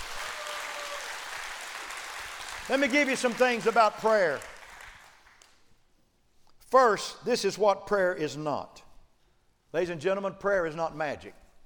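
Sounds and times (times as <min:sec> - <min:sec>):
audience applause of many hands clapping: 0:00.0 - 0:05.4
speech: 0:02.7 - 0:04.5, 0:06.7 - 0:08.8, 0:09.7 - 0:11.4.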